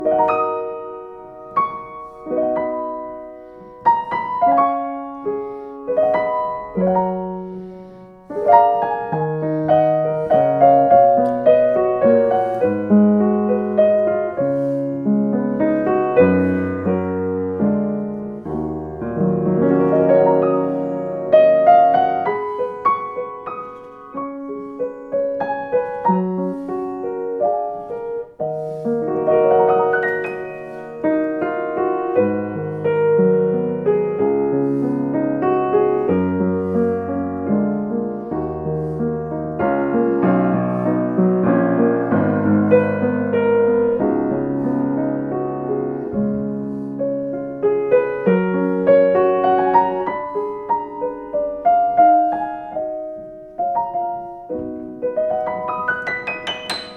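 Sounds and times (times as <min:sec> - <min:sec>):
Yamaha U3HS piano: 0:00.0 - 0:56.9.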